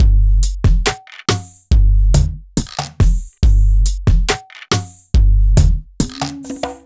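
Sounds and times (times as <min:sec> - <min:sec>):
slow-motion beat loop at 140 BPM: 0:00.0 - 0:06.8.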